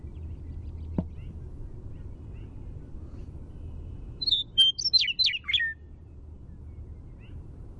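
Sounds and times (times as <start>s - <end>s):
Western meadowlark primary song: 0.0s - 7.7s
low background rumble: 0.0s - 7.7s.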